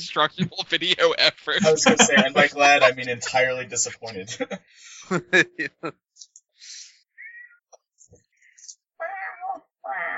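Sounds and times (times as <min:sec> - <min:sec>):
speech: 0:00.0 - 0:06.3
laughter: 0:00.4 - 0:06.0
cat meowing to be let out: 0:09.0 - 0:10.1.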